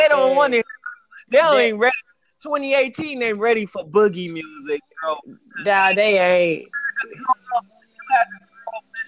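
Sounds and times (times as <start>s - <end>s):
voice through a phone line breaking up in bursts: 0.0s - 2.0s, 4.4s - 9.0s
speech: 0.0s - 8.4s.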